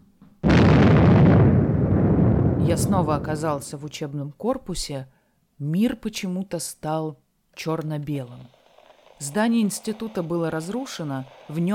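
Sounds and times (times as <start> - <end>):
explosion: 0.4 - 3.8
speech: 2.7 - 8.6, 9.2 - 11.7.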